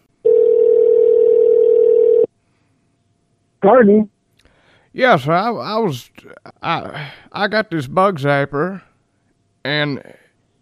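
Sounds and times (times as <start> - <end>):
telephone dial tone: 0.3 - 2.3
speech: 3.6 - 4.1, 5.0 - 8.9, 9.6 - 10.2.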